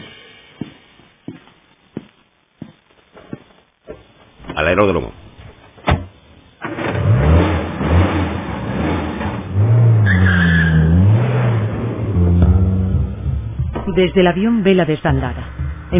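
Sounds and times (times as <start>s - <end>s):
speech: 4.6s - 5.2s, 14.0s - 15.9s
car engine starting and revving as the car pulls away: 6.6s - 15.9s
car tire squeal: 8.8s - 12.9s.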